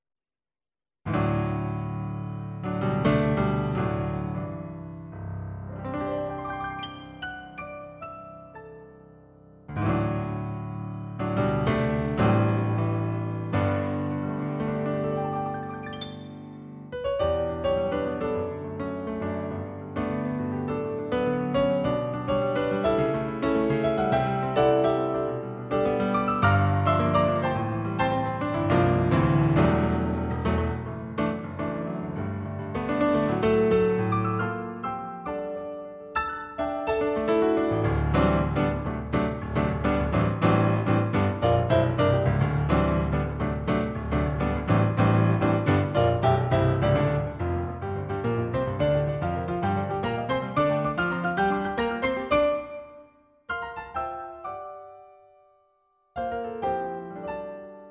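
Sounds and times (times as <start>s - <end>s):
RD-600 digital piano playing: 1.1s - 55.6s, 56.2s - 57.8s.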